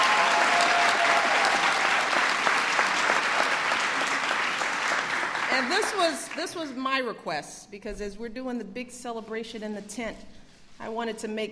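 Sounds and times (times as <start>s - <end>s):
large audience applause: 0.0s - 6.4s
speech: 5.6s - 11.5s.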